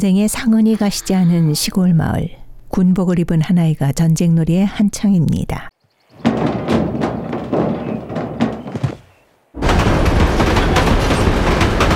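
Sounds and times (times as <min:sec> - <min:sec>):
speech: 0:00.0 - 0:05.7
train carrying tanks clattering: 0:06.2 - 0:11.9.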